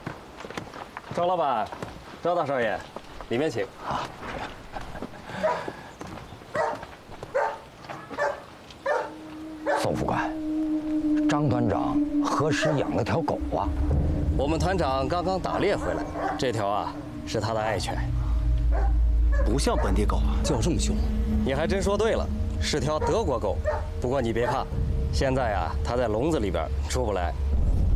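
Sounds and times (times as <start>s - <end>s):
speech: 1.2s - 4.2s, 12.5s - 18.2s, 19.5s - 27.5s
German dog barking fiercely in a cage: 5.4s - 5.7s, 6.6s - 9.8s
German dog whining in a cage: 8.1s - 9.9s
steady low hum and rumble: 10.2s - 27.9s.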